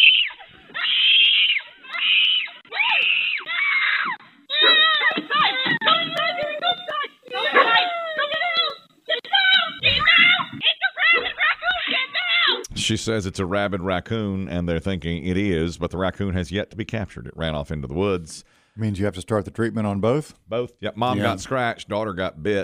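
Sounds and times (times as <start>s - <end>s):
child screaming: 0.0s - 12.6s
speech: 12.9s - 22.6s.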